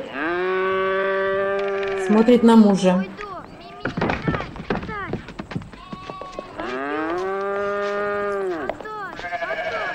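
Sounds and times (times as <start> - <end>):
cow mooing as it is led out: 0.0 - 2.8, 6.6 - 8.7
speech: 2.1 - 3.2, 3.8 - 4.1.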